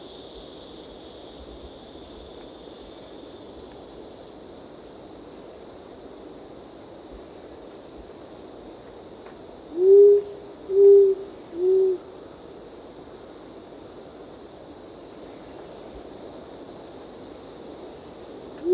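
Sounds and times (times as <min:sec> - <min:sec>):
faint insect hum: 0:00.0 - 0:18.7
short-toed coucal giving low soft hoots: 0:09.8 - 0:12.1.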